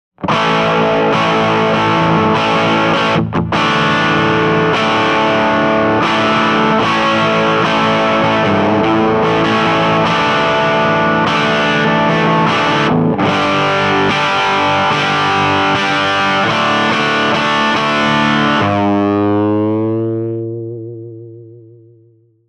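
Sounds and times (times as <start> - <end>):
Fender Telecaster electric guitar with rusted fuzz: 0.2 - 22.3.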